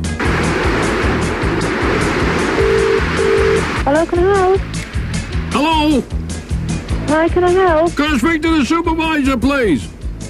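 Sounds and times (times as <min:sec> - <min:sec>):
water gushing from a huge water main: 0:00.0 - 0:06.1
speech: 0:04.0 - 0:04.7, 0:05.8 - 0:06.2, 0:07.1 - 0:10.0.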